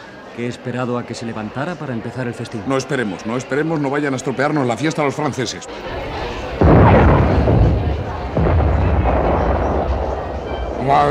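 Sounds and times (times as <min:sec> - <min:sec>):
speech: 0:00.4 - 0:06.2, 0:10.9 - 0:11.1
artillery blasts with rumbling roar: 0:06.6 - 0:11.1.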